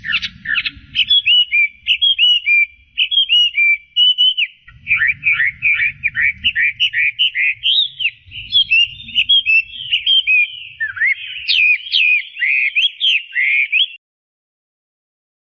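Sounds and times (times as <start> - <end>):
faint low rumble: 0.0 - 11.6
Chinese hwamei singing rich varied whistled phrases: 0.0 - 14.0.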